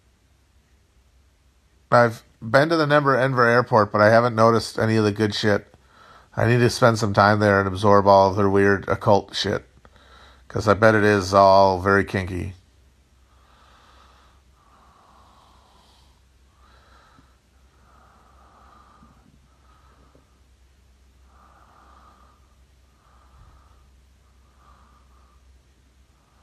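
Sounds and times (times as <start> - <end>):
low hum: 0.0 - 26.4
speech: 1.9 - 5.7, 6.4 - 9.7, 10.5 - 12.6
heavy rasping breathing close to the mic: 5.7 - 6.6, 9.8 - 11.6, 13.2 - 26.4.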